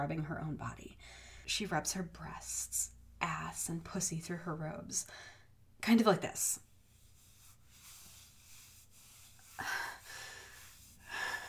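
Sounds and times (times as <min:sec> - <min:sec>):
speech: 0:00.0 - 0:06.7
heavy gasping breathing with faint whistling tone: 0:09.4 - 0:11.4.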